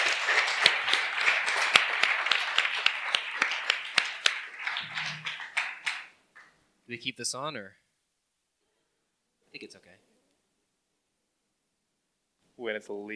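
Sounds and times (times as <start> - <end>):
room full of people applauding: 0.0 - 6.6
speech: 6.9 - 7.8, 9.5 - 10.1, 12.6 - 13.1.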